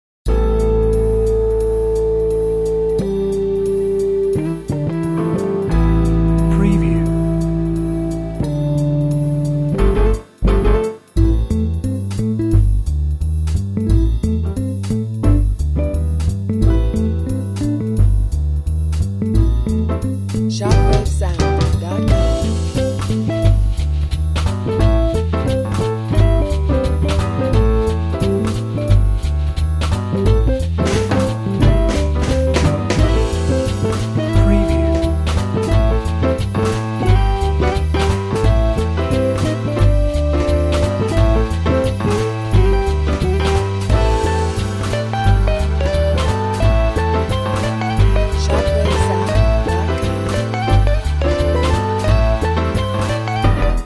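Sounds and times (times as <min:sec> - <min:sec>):
soft jazz music: 0:00.3 - 0:53.8.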